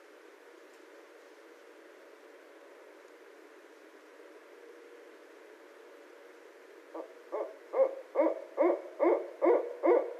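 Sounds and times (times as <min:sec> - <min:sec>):
faint hiss: 0:00.0 - 0:08.2
barred owl hooting: 0:06.9 - 0:10.1.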